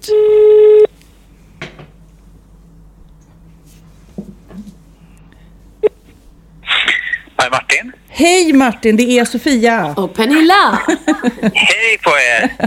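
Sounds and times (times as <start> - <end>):
telephone call being placed: 0.1 - 0.9
speech: 8.2 - 12.6
laughter: 10.6 - 12.6.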